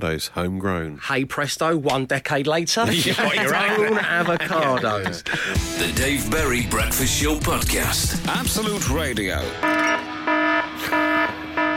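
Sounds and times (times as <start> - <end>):
speech: 0.0 - 9.9
laughter: 2.8 - 6.2
loud electronic alarm blaring in pulsing bursts: 9.6 - 11.7.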